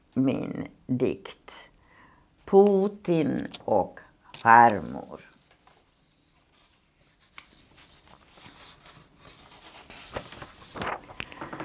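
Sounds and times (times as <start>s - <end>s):
speech: 0.2s - 1.7s, 2.5s - 5.3s
sheets of paper shuffled and rustled: 4.3s - 11.6s.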